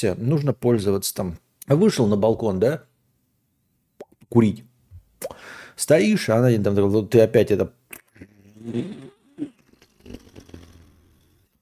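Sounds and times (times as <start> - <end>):
speech: 0.0 - 2.9, 4.3 - 7.8, 8.6 - 9.5
voice imitating a fart with buzzy sputtering bursts: 7.9 - 11.6.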